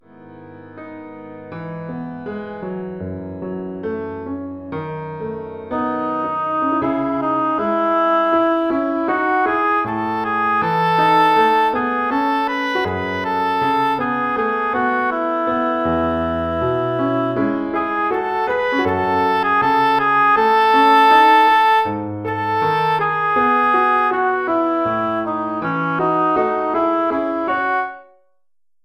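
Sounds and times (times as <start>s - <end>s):
oboe solo: 5.7s - 28.2s.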